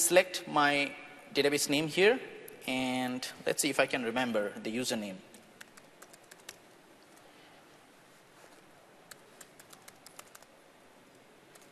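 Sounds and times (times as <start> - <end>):
faint hiss: 0.0 - 11.7
speech: 0.1 - 5.3
typing on a computer keyboard: 5.6 - 6.6, 9.1 - 10.5, 11.5 - 11.7.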